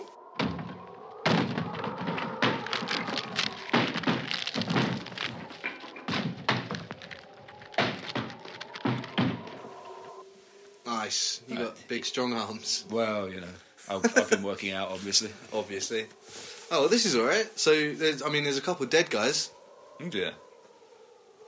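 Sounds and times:
heavy thuds on wooden door being forced open: 0.4 - 5.5, 7.7 - 9.6
wooden door cracking and splintering: 0.4 - 10.0
speech: 11.1 - 20.4.

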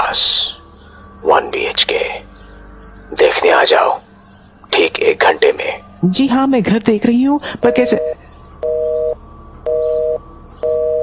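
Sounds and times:
speech: 0.1 - 0.6, 1.2 - 2.2, 3.2 - 4.0, 4.8 - 8.2
phone line disconnected tone beeps: 7.6 - 11.0.

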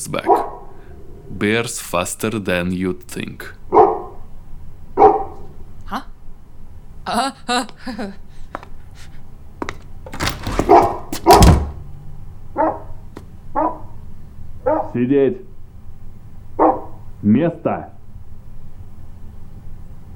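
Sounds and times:
speech: 0.0 - 0.6, 1.3 - 3.8, 7.1 - 8.3, 15.0 - 15.5, 17.3 - 17.9
unfriendly dog barking loudly: 0.3 - 0.6, 3.7 - 4.2, 5.0 - 5.5, 12.6 - 13.0, 13.6 - 14.0, 14.6 - 15.0, 16.6 - 17.0
heavier scuffling thump: 9.6 - 11.8.

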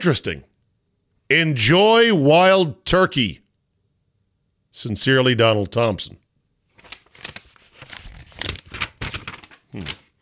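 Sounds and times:
speech: 0.0 - 0.5, 1.3 - 3.4, 4.8 - 6.2, 9.7 - 10.0
paper sheets rustling and crinkling: 6.7 - 10.2.

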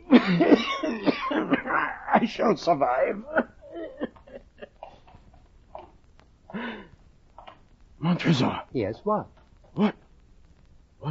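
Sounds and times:
person coughing in harsh throaty bursts: 0.0 - 5.1
speech: 0.2 - 1.5, 2.3 - 3.5, 8.0 - 10.0.

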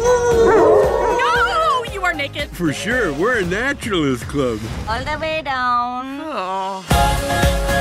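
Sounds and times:
several voices howling together in wavering tones: 0.0 - 2.0
speech: 2.6 - 7.7.

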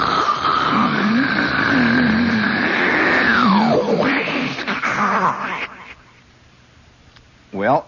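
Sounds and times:
voice imitating the sea rolling back out of a sea cliff cave: 0.0 - 6.0
speech: 7.7 - 7.8.

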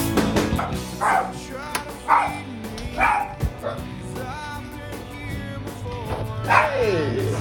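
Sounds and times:
music: 0.0 - 7.3
dog barking: 0.6 - 1.4, 2.1 - 3.9, 6.4 - 7.1.

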